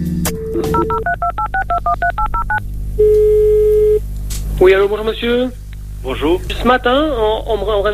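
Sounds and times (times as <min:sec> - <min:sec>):
phone line dial tone: 0:00.6 - 0:04.0
speech: 0:01.8 - 0:04.0, 0:04.6 - 0:07.9.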